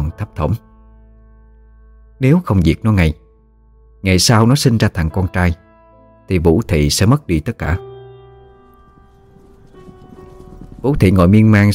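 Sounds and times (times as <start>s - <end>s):
speech: 0.4s - 0.7s, 2.2s - 3.2s, 4.0s - 5.6s, 6.3s - 7.9s, 10.8s - 11.7s
group of horses' hooves clip-clopping to a stop before a great gate: 8.6s - 11.7s.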